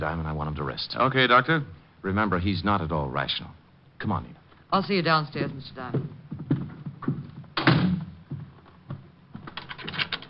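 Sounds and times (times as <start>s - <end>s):
speech: 0.0s - 6.2s
door swinging shut: 7.6s - 8.1s
latch or lock being worked: 9.5s - 10.2s.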